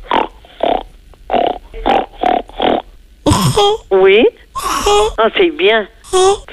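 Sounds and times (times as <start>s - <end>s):
child imitating a pig grunting through the nose: 2.0s - 3.9s, 4.6s - 5.2s, 6.1s - 6.5s
speech: 3.6s - 6.5s.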